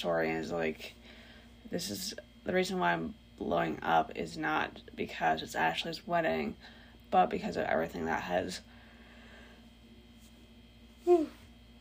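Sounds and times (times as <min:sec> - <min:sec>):
speech: 0:00.0 - 0:08.7, 0:11.0 - 0:11.4
short voiced yawn: 0:11.0 - 0:11.4.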